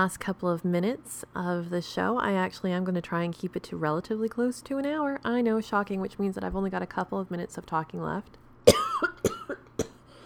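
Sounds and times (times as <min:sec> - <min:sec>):
speech: 0:00.0 - 0:08.4
person coughing: 0:08.7 - 0:10.1.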